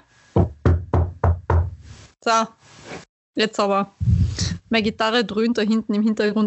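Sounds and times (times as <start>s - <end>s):
knocking on wood: 0.4s - 1.8s
speech: 2.2s - 4.1s, 4.7s - 6.4s.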